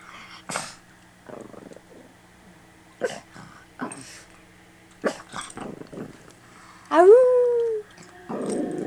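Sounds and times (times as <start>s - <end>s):
female dog howling: 6.9s - 8.8s.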